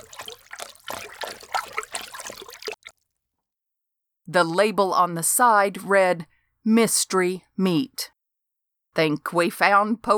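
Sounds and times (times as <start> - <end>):
hands splashing and sloshing through cold slushy water: 0.0 - 2.9
speech: 4.3 - 8.1, 9.0 - 10.1.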